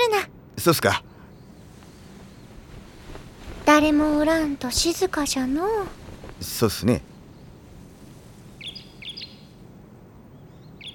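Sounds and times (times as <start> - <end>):
steady low rumble: 0.0 - 10.9
speech: 0.6 - 1.1, 3.7 - 7.1
small birds chirping: 0.6 - 10.9.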